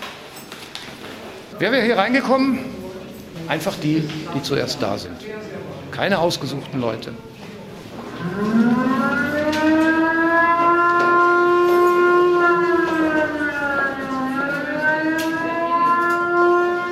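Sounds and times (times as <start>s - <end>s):
speech: 1.6s - 2.7s, 3.5s - 7.3s
civil defense air-raid siren wailing the special alarm signal: 8.0s - 16.8s.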